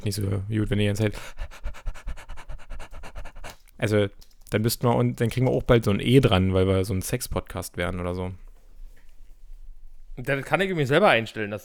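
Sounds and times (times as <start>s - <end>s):
speech: 0.0s - 1.6s, 3.8s - 8.4s, 10.2s - 11.6s
person imitating a dog panting: 0.8s - 3.8s.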